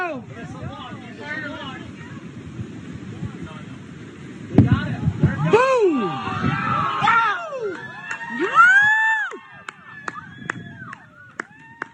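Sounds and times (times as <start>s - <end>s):
murmured chatter: 0.0s - 7.0s
small crowd cheering: 5.3s - 11.9s
excited whoops and shouts: 5.4s - 11.9s.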